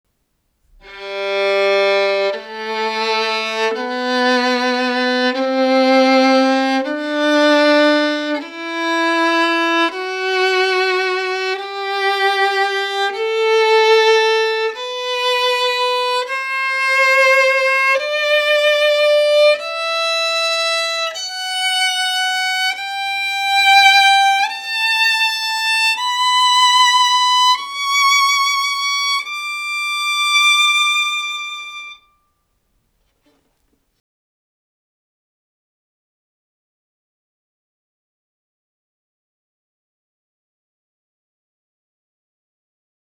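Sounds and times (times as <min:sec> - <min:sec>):
violin playing a scale: 0:00.7 - 0:32.2.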